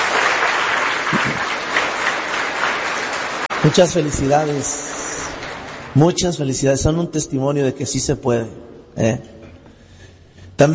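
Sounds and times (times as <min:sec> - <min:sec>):
audience clapping: 0:00.0 - 0:06.7
speech: 0:03.6 - 0:04.9, 0:06.0 - 0:09.4, 0:10.6 - 0:10.7.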